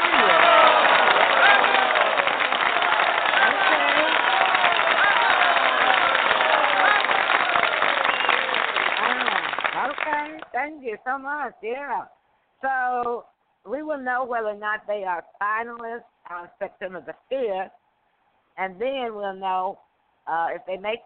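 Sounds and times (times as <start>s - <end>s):
cheers and voices: 0.0s - 9.4s
audience applause: 0.0s - 10.5s
speech: 11.2s - 17.8s, 18.6s - 21.0s.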